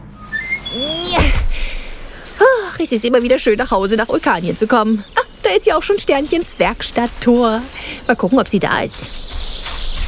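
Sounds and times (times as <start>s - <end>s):
curving whistling electronic tones: 0.0s - 1.4s
automatic lift door sliding open inside a rocket: 0.0s - 1.6s
speech: 2.8s - 9.2s.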